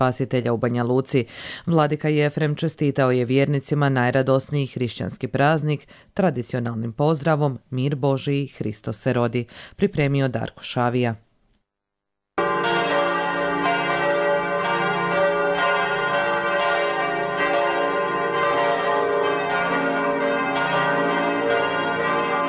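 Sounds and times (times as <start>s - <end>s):
speech: 0.0s - 11.2s
church bells ringing at midnight for Serbian Orthodox Christmas: 12.4s - 22.4s.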